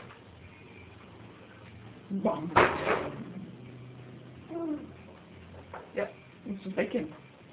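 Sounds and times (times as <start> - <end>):
speech: 2.1 - 3.3, 5.9 - 7.2
door pushed shut: 2.5 - 3.2.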